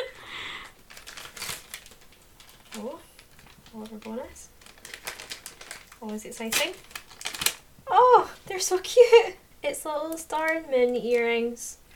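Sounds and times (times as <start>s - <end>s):
wrapping paper and tape crinkling, rustling and tearing as a gift is unwrapped: 0.8s - 7.7s, 10.0s - 11.9s
speech: 2.8s - 3.1s, 3.7s - 4.5s, 6.0s - 6.9s, 7.9s - 11.8s.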